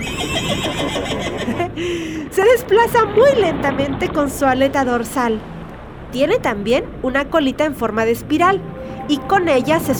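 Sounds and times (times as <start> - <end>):
horse neighing: 0.0 - 1.7
speech: 2.4 - 9.9.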